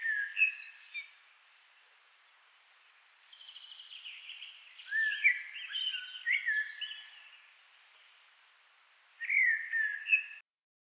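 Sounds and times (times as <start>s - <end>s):
Turdus merula common blackbird singing: 0.0s - 1.2s, 3.0s - 7.5s, 9.2s - 10.4s.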